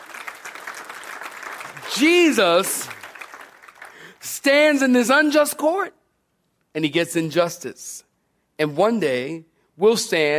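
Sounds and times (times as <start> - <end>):
large group clapping hands in applause: 0.0 - 4.9
speech: 1.9 - 3.0, 4.2 - 6.0, 6.8 - 10.3.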